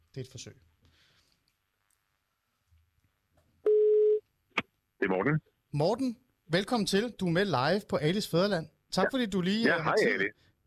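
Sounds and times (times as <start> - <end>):
speech: 0.2 - 0.8, 5.0 - 10.6
ringing tone of an outgoing phone call: 3.7 - 4.2.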